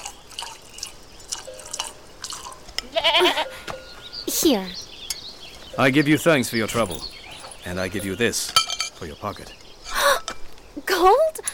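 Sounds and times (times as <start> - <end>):
nanny goat's milk pouring into a cup: 0.0 - 2.6
milk drips and small splashes: 0.0 - 2.8
speech: 4.4 - 4.8, 5.8 - 9.6, 11.0 - 11.2.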